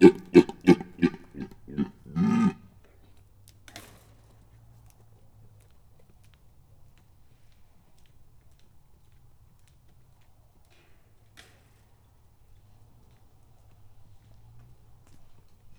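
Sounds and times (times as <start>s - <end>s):
red deer stag bellowing: 0.0s - 2.6s.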